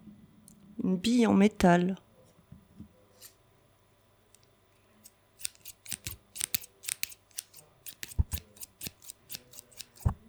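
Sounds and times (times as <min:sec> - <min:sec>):
speech: 0:00.9 - 0:02.0
scissors snipping: 0:05.0 - 0:10.2.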